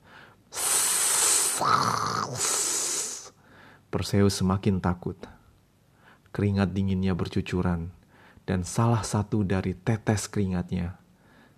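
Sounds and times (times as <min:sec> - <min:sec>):
snakes hissing: 0:00.5 - 0:03.4
speech: 0:01.6 - 0:02.6, 0:03.9 - 0:05.4, 0:06.4 - 0:11.0.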